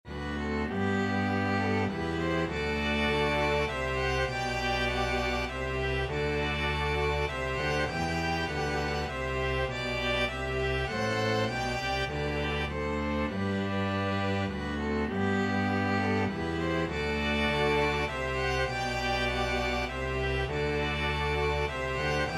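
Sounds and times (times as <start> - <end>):
string ensemble playing a carol: 0.0 - 22.3.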